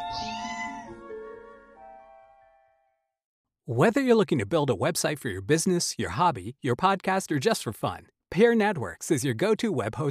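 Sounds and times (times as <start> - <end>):
cat meowing: 0.0 - 1.0
speech: 3.7 - 10.0.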